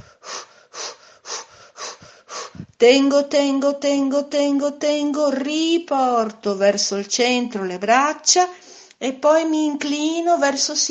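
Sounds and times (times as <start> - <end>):
quickened rhythmic breathing while holding a side-bending stretch: 0.0 - 2.8, 8.5 - 9.0
speech: 2.8 - 10.9.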